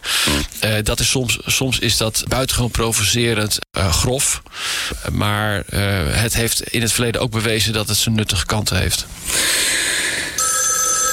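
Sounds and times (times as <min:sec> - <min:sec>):
speech: 0:00.6 - 0:10.1
telephone ringing with a bright electronic trill: 0:10.4 - 0:11.1.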